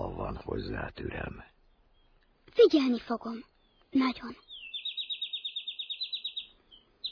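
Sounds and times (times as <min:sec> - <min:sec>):
speech: 0:00.4 - 0:01.6, 0:02.6 - 0:04.4
European robin chirping in a fast trill: 0:01.5 - 0:07.0.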